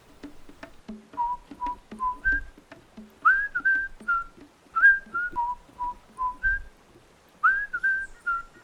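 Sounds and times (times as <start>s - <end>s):
faint low thumps: 0.0s - 6.8s
person whistling a bouncy melody: 1.2s - 2.6s, 3.2s - 6.7s, 7.4s - 8.6s.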